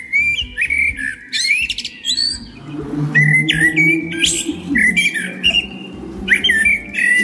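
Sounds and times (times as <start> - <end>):
common blackbird singing: 0.0 - 7.2
faint birds: 0.0 - 7.2
low rumble: 2.2 - 7.2.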